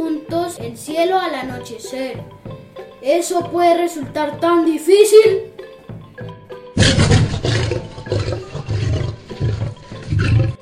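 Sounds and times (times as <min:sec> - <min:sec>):
speech: 0:00.6 - 0:05.6
lion roaring: 0:06.8 - 0:10.6.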